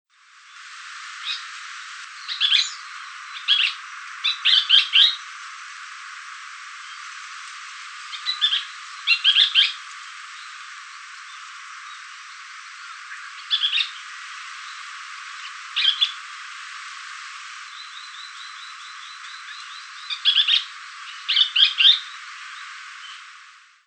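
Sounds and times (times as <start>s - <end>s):
sankouchou calling in Itoman: 1.2s - 5.4s, 8.0s - 16.5s, 17.6s - 23.3s.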